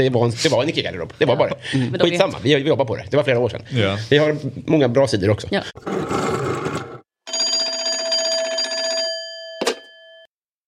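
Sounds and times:
speech: 0:00.0 - 0:06.4
telephone rapid mechanical bell ringing: 0:07.3 - 0:10.3
short sharp ding: 0:09.3 - 0:10.3.

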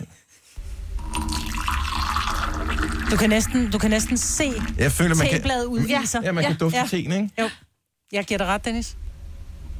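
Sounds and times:
water running steadily from a tap: 0:01.2 - 0:04.9
speech: 0:03.1 - 0:09.0.

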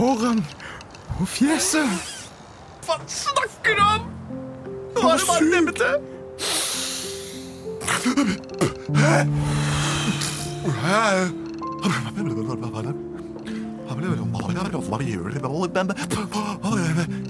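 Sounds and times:
speech: 0:00.0 - 0:02.1, 0:02.9 - 0:04.1, 0:05.0 - 0:06.6, 0:08.0 - 0:09.7, 0:10.6 - 0:13.1, 0:14.0 - 0:17.2
creature with gills breathing deeply through its mouth: 0:06.1 - 0:07.7, 0:09.3 - 0:10.6
gasps: 0:06.4 - 0:10.7.

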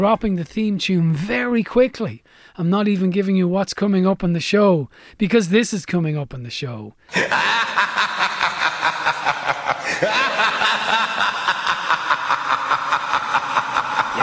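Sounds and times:
speech: 0:00.0 - 0:08.4
dense background: 0:07.1 - 0:14.2
sinister theatrical evil horror laugh: 0:07.1 - 0:14.2.

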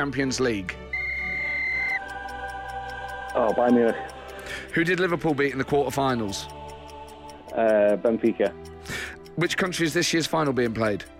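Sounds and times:
speech: 0:00.0 - 0:00.9, 0:03.4 - 0:06.6, 0:07.5 - 0:08.7, 0:09.4 - 0:11.1
quiet regular ticking of a countdown timer: 0:00.0 - 0:11.1
loud referee-style whistle blast: 0:00.9 - 0:02.0.

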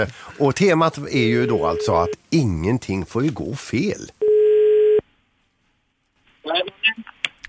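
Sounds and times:
speech: 0:00.0 - 0:04.2
telephone ringing tone while a hotel director calls his boss: 0:01.4 - 0:02.2, 0:04.2 - 0:05.0.

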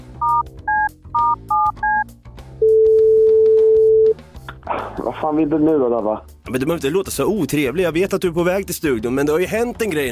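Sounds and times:
dual-pitched telephone keypad tones: 0:00.2 - 0:04.2
speech: 0:05.0 - 0:10.1.

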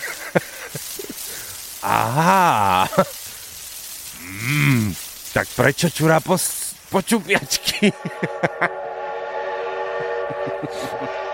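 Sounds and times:
laughter: 0:00.0 - 0:01.3, 0:01.9 - 0:03.2, 0:07.4 - 0:08.8, 0:10.1 - 0:11.3
speech: 0:00.4 - 0:00.8, 0:01.8 - 0:03.2, 0:05.4 - 0:08.8, 0:10.6 - 0:11.2
rumbling rail noise: 0:06.9 - 0:11.3
train sounding a long steady whistle: 0:07.6 - 0:11.3.

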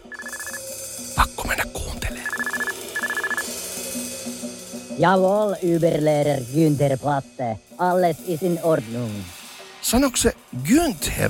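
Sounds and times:
telephone ringing with a bright electronic ringtone: 0:00.0 - 0:00.7, 0:02.2 - 0:03.5
speech: 0:05.0 - 0:11.2.

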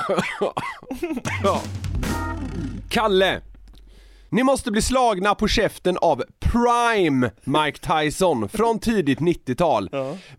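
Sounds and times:
person coughing: 0:00.0 - 0:01.6
speech: 0:00.1 - 0:03.5, 0:04.3 - 0:10.3.

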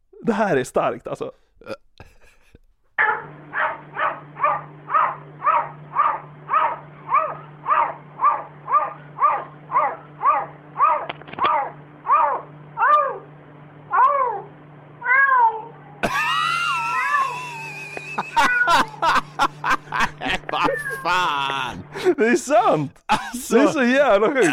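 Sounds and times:
speech: 0:00.3 - 0:01.8, 0:21.1 - 0:24.5
cat at a window making bark-like yaps: 0:03.0 - 0:13.2, 0:13.9 - 0:14.5
cat meowing: 0:14.0 - 0:15.8, 0:18.3 - 0:19.0, 0:20.6 - 0:21.2
laughter: 0:16.0 - 0:24.5.

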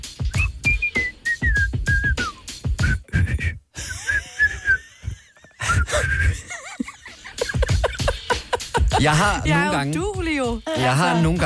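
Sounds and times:
person whistling a short tune: 0:00.2 - 0:04.9, 0:05.6 - 0:06.4
person laughing: 0:03.0 - 0:09.7, 0:10.7 - 0:11.4
speech: 0:09.0 - 0:11.4.

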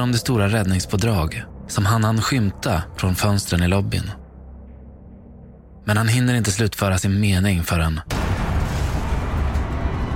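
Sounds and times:
speech: 0:00.0 - 0:04.2, 0:05.8 - 0:08.2
deafening explosion rumble shaking building: 0:08.1 - 0:10.1.

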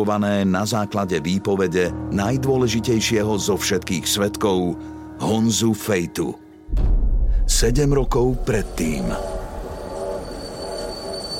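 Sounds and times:
speech: 0:00.0 - 0:06.9, 0:07.5 - 0:09.3
train rumbling at a railway station in western Moravia: 0:08.4 - 0:11.3.

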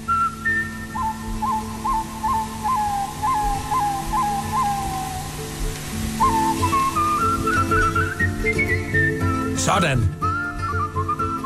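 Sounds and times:
full musical accompaniment: 0:00.0 - 0:11.4
man whistling a lively melody: 0:00.0 - 0:11.4
speech: 0:09.8 - 0:10.2.

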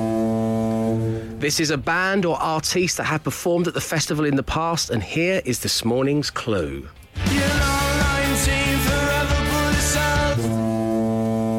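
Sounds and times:
ferry horn blast: 0:00.0 - 0:01.4, 0:07.2 - 0:11.5
speech: 0:01.4 - 0:07.6.

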